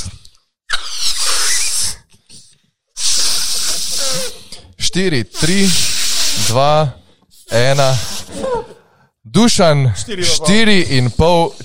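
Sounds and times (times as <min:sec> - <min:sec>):
person blowing up a balloon: 0:00.0 - 0:04.7, 0:05.3 - 0:08.8
speech: 0:05.0 - 0:08.6, 0:09.3 - 0:11.6.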